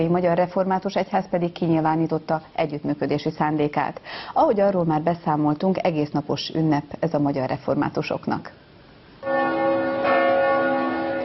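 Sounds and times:
speech: 0:00.0 - 0:08.6
large Reformed church bell ringing: 0:09.2 - 0:11.2.

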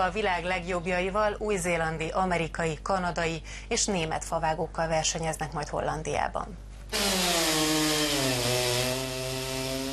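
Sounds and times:
speech: 0:00.0 - 0:07.3
chainsaw roaring as it cuts through wood: 0:06.9 - 0:09.9.

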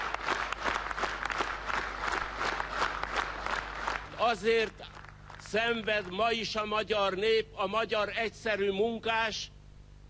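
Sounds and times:
large crowd applauding in a standing ovation: 0:00.0 - 0:06.2
speech: 0:04.3 - 0:04.9, 0:05.5 - 0:09.6.

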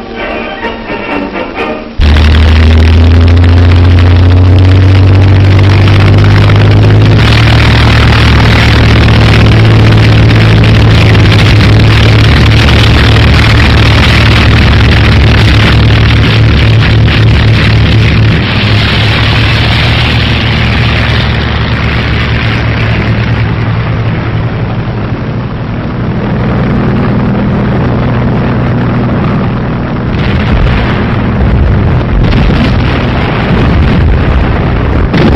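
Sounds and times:
German military aircraft engines droning during an attack on England: 0:00.0 - 0:35.2.

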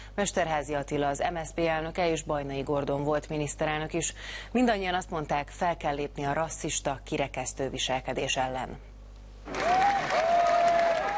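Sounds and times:
speech: 0:00.2 - 0:08.9
crowd applause at a mass demonstration against Nazism: 0:09.5 - 0:11.1.

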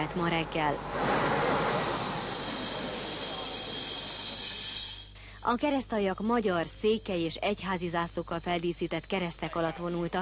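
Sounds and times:
pilgrim train wheels squealing on rails from Hungary to Transylvania: 0:00.0 - 0:05.2
speech: 0:00.2 - 0:01.8, 0:05.4 - 0:10.1.

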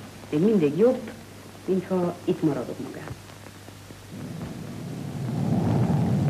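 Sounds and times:
speech: 0:00.3 - 0:03.3, 0:04.1 - 0:04.5
thunder rumbling during a storm: 0:04.1 - 0:06.2.

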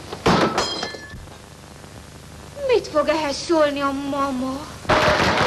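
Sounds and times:
thrown drinking glass shattering: 0:00.3 - 0:01.2
speech: 0:03.0 - 0:05.3.

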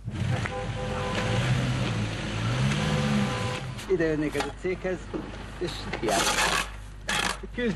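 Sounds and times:
small bus engine revving, straining up a snowy uphill slope: 0:00.0 - 0:04.4
speech: 0:03.9 - 0:06.6, 0:07.4 - 0:07.7.

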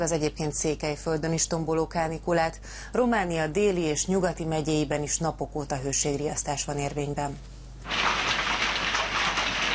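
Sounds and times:
speech: 0:00.0 - 0:07.6
hail pouring down during a summer storm in Székely Land, Romania: 0:07.9 - 0:09.7.

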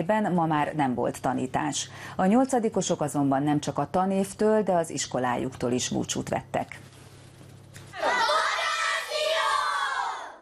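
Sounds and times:
speech: 0:00.0 - 0:07.0
crowd of children shouting for the end-of-school bell: 0:07.9 - 0:10.4.

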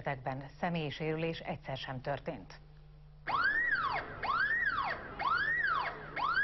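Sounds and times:
speech: 0:00.0 - 0:03.4
electronic alarm wailing at a bank branch during an armed hostage robbery: 0:03.3 - 0:06.4.

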